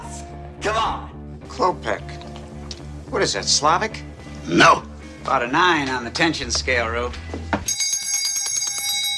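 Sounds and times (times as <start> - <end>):
speech: 0.6 - 2.1, 3.2 - 7.6
small hand bell ringing: 7.6 - 9.1.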